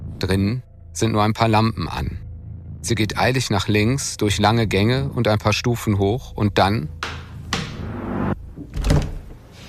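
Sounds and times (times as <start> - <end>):
speech: 0.2 - 2.2, 2.8 - 7.2
glass revolving door being pushed round: 7.6 - 9.0
door thud with rattle: 8.6 - 9.4.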